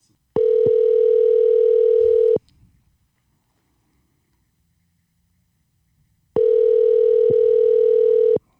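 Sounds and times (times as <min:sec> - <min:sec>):
ringback tones from an outgoing phone call: 0:00.4 - 0:02.4, 0:06.4 - 0:08.4.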